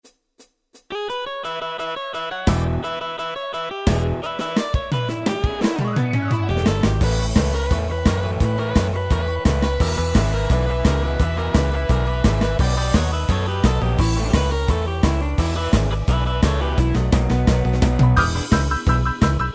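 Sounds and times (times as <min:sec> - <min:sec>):
rock and roll and R and B keyboard accompaniment factory styles: 0:00.9 - 0:19.5.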